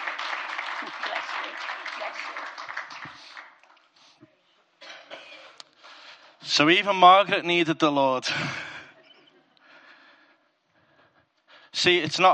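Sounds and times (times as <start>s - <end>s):
crowd applause: 0.0s - 3.9s
speech: 0.8s - 2.8s, 6.6s - 8.6s, 11.8s - 12.3s.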